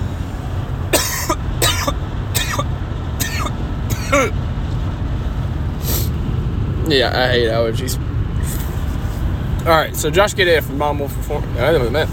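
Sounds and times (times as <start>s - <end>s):
low rumbling background: 0.0s - 12.1s
person coughing in a fit: 0.9s - 4.4s
speech: 4.2s - 4.4s, 6.9s - 8.1s, 9.6s - 12.1s.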